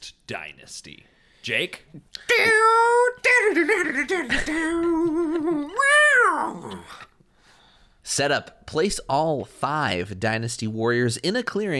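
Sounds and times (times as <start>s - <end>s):
speech: 0.3s - 7.1s, 8.1s - 11.7s
person imitating cat meowing with wavering mews: 2.4s - 7.1s.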